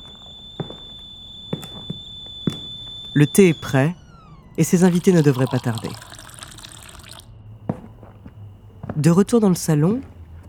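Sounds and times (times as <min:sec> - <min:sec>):
footsteps of a woman walking toward the kitchen: 0:00.0 - 0:02.9, 0:07.6 - 0:10.4
steady high-pitched electronic whine: 0:00.0 - 0:07.9
speech: 0:03.1 - 0:04.0, 0:04.6 - 0:06.1, 0:09.0 - 0:10.1.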